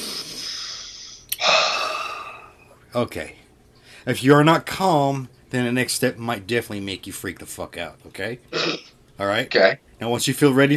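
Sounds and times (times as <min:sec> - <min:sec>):
slow airy inhale through the nose: 0:00.0 - 0:02.6
louder breathy exhale: 0:00.0 - 0:02.7
speech: 0:02.9 - 0:10.7.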